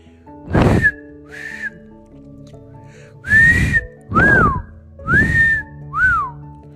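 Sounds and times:
person attempting to whistle with airy breath bursts: 0.5 - 1.8, 3.2 - 6.4.

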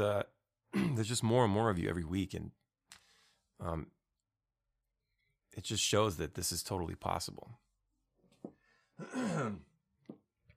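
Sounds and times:
speech: 0.0 - 2.6, 3.6 - 4.0, 5.5 - 7.6, 9.0 - 9.7
person clearing throat: 0.7 - 1.0, 9.0 - 9.8.

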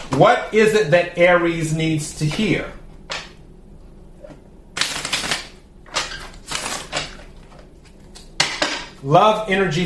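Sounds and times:
speech: 0.2 - 2.8, 9.0 - 9.8
tarot cards being split and shuffled: 4.8 - 8.4.

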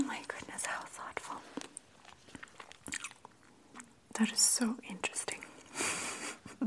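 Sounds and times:
person chewing soft gummy candy: 0.0 - 4.2
speech: 4.2 - 5.3.

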